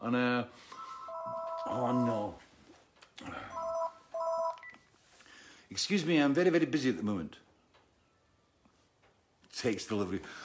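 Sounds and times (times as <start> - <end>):
speech: 0.0 - 0.8, 1.6 - 2.4, 5.7 - 7.4, 9.6 - 10.4
mobile phone text message alert tone: 0.7 - 2.2, 3.5 - 4.8.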